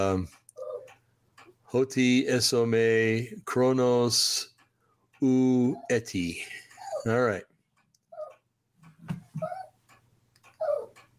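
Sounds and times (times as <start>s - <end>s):
speech: 0.0s - 0.4s, 1.7s - 4.5s, 5.2s - 7.5s
dog whining in high-pitched nasal whimpers: 0.5s - 1.0s, 5.5s - 7.4s, 8.0s - 11.1s.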